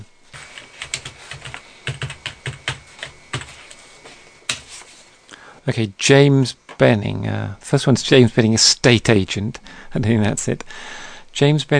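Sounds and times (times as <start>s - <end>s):
fingers clicking and tapping on a computer keyboard during an online search: 0.5s - 3.6s
speech: 5.6s - 11.7s.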